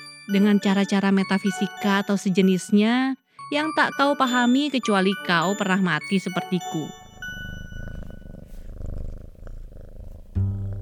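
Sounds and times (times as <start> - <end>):
speech: 0.3 - 7.0
cat purring: 7.0 - 10.7.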